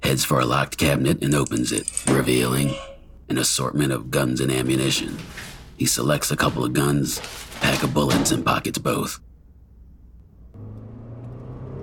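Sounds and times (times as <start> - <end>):
speech: 0.1 - 9.3
car engine accelerating while weaving through traffic: 10.4 - 11.8.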